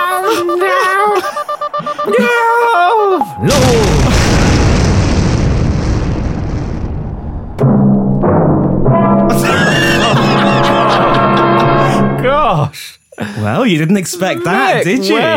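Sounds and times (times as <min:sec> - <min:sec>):
laughter: 0:00.0 - 0:03.3, 0:09.3 - 0:12.2
loud explosion of a Hwasong-14 intercontinental ballistic missile striking the stern of a sleigh: 0:03.4 - 0:10.7
speech: 0:12.7 - 0:15.3.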